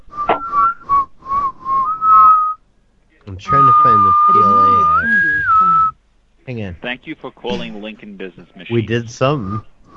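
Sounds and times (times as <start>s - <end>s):
person whistling short clear notes into a telephone: 0.1s - 2.6s, 3.5s - 5.9s, 9.3s - 9.9s
speech: 3.4s - 9.7s.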